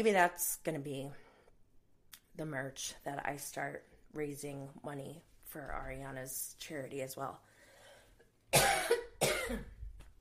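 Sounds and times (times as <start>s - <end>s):
speech: 0.0s - 1.2s, 2.4s - 7.5s, 8.5s - 9.7s
faint breathy sound: 7.4s - 8.3s
harsh coughs: 8.5s - 9.8s.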